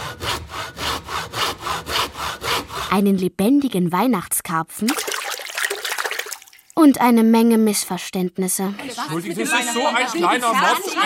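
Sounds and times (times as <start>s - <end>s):
handsaw cutting through wood: 0.0s - 3.1s
speech: 2.9s - 5.1s, 6.8s - 11.0s.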